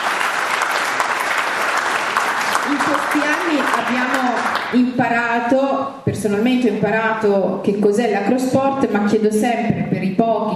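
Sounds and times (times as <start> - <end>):
audience applauding an acrosport pair: 0.0 - 4.8
speech: 3.1 - 10.5.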